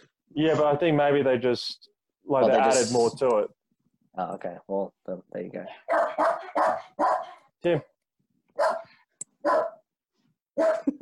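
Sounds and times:
speech: 0.3 - 3.6, 4.2 - 7.9, 10.6 - 10.9
dog barking: 5.8 - 7.5, 8.6 - 9.9, 10.6 - 10.9.

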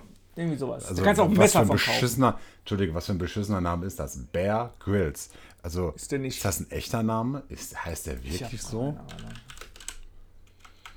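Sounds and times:
low steady hum: 0.0 - 10.9
speech: 0.4 - 9.5
typing on a loud computer keyboard: 8.4 - 10.9.

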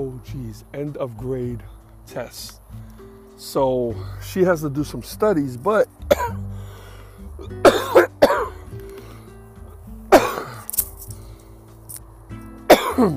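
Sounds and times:
speech: 0.0 - 6.4, 13.0 - 13.1
person coughing into a hand-covered microphone: 6.1 - 6.4, 7.4 - 8.6, 10.1 - 10.7, 12.7 - 13.1.

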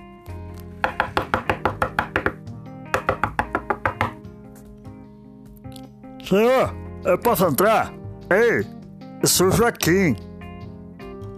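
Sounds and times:
soft music: 0.0 - 11.3
knocking on a door: 0.8 - 4.3
speech: 6.3 - 10.3.

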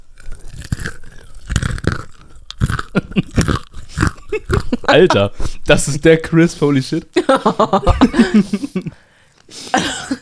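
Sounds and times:
crunchy chewing of a mouthful of nuts: 0.0 - 4.9
laughter: 2.9 - 3.5, 4.2 - 5.6, 7.2 - 9.0
speech: 4.9 - 9.0.

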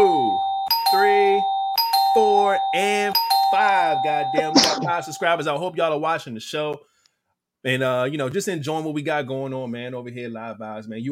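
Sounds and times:
small bell being struck: 0.0 - 5.6
speech: 2.6 - 7.0, 7.6 - 11.1.

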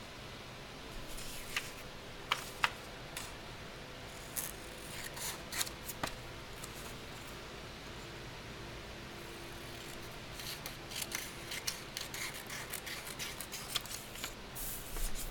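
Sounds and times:
soft steady hum: 0.0 - 15.3
crisp snips of cutting: 9.8 - 14.4.

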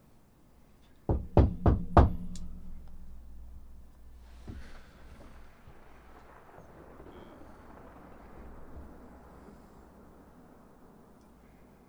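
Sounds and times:
knocking: 1.1 - 6.3.

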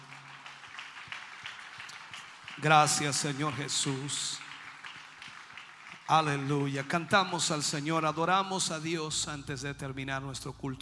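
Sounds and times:
audience applauding: 0.0 - 7.6
speech: 2.6 - 4.4, 6.1 - 10.8.

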